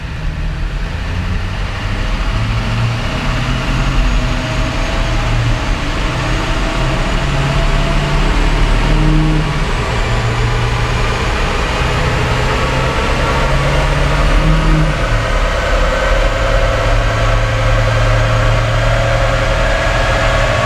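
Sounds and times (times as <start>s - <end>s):
diesel pickup truck engine accelerating in fifth gear on a dyno: 0.0s - 20.6s.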